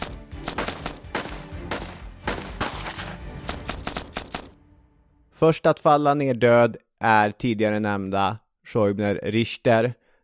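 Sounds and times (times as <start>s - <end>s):
single gunshot: 0.0s - 4.3s
heavy gunfire in dense volleys: 0.0s - 4.6s
speech: 5.4s - 10.0s.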